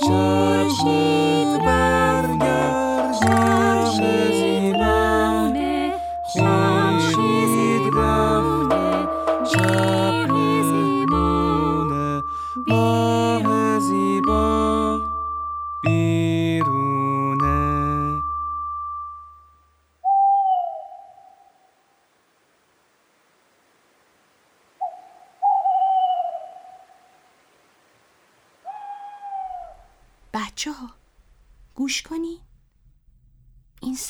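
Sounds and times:
person speaking: 0:00.0 - 0:08.6, 0:31.8 - 0:32.5
owl hooting in short wavering calls: 0:00.0 - 0:11.7, 0:20.0 - 0:22.0, 0:24.7 - 0:27.6, 0:28.6 - 0:30.2
brief sustained tone: 0:00.0 - 0:19.2.

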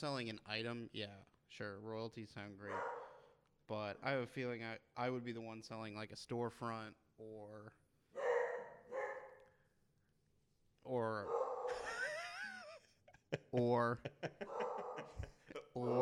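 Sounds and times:
speech: 0:00.0 - 0:03.0, 0:03.7 - 0:07.8, 0:10.8 - 0:11.8, 0:13.3 - 0:15.9
house dog barking and yelping: 0:02.7 - 0:03.3, 0:08.2 - 0:09.4, 0:11.3 - 0:11.8, 0:14.4 - 0:15.2
laughter: 0:11.7 - 0:15.9.

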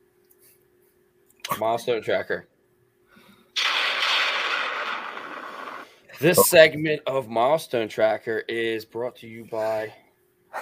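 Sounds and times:
speech: 0:01.6 - 0:02.5, 0:06.2 - 0:10.0
thunder sound effect crackling roar: 0:03.6 - 0:05.9.

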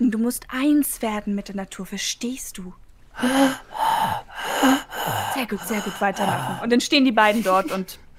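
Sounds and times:
speech: 0:00.1 - 0:08.0
loud deliberate heavy breathing: 0:03.2 - 0:08.1.

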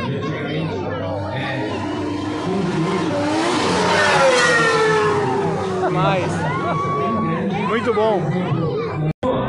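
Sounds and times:
crowd chatter and talking: 0:00.0 - 0:09.4
fast V6 race car engine revving past: 0:01.0 - 0:07.9
speech: 0:07.9 - 0:08.7.

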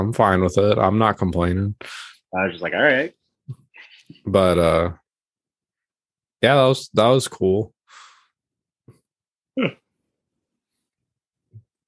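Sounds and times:
speech: 0:00.1 - 0:05.0, 0:06.4 - 0:08.0, 0:09.6 - 0:09.8
person yawning: 0:09.6 - 0:09.8.

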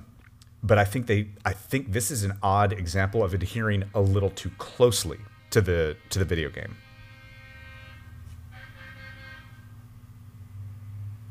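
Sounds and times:
speech: 0:00.6 - 0:06.8
train horn blast: 0:03.5 - 0:09.8.

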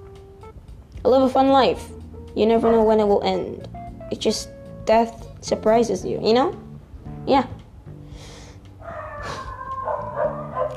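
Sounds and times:
speech: 0:01.0 - 0:06.6, 0:07.2 - 0:07.6
stray dogs barking and yipping outside: 0:02.6 - 0:03.0, 0:08.8 - 0:10.7.

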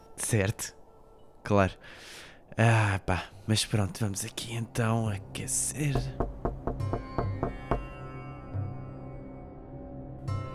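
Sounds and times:
speech: 0:00.2 - 0:00.8, 0:01.4 - 0:06.3
knocking on a door: 0:05.9 - 0:08.0.

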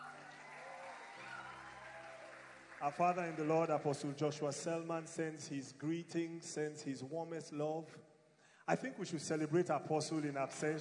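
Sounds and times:
large church audience clapping during a service: 0:00.0 - 0:04.9, 0:10.0 - 0:10.7
speech: 0:02.8 - 0:08.1, 0:08.7 - 0:10.7.

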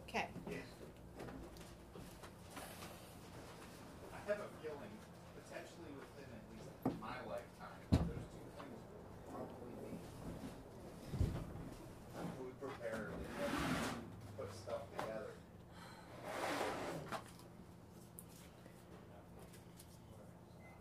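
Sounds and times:
room noise: 0:01.1 - 0:20.7
voices: 0:04.0 - 0:15.5
chair with someone seated being scooted across the floor: 0:11.0 - 0:14.3, 0:16.1 - 0:17.4.

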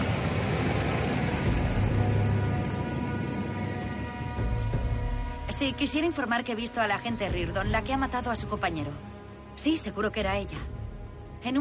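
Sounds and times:
approaching car engine rumble: 0:00.0 - 0:05.4
broad road noise: 0:00.0 - 0:05.7
speech: 0:05.5 - 0:10.8, 0:11.4 - 0:11.6.

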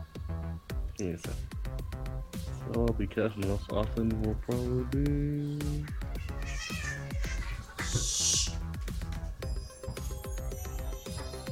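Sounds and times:
busy tonal background with steady rhythmic pulses: 0:00.7 - 0:11.5
speech: 0:01.0 - 0:01.6, 0:02.7 - 0:06.0
kittens meowing: 0:05.5 - 0:08.7.

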